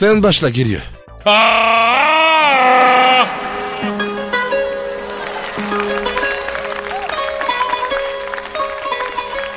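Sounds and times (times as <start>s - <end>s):
speech: 0.0s - 3.4s
soft romantic background music: 2.9s - 9.5s.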